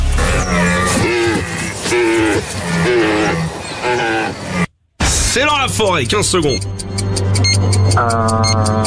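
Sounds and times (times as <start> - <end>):
rutting deer stag bellowing: 0.1 - 4.7
speech: 5.4 - 7.0, 8.0 - 8.8.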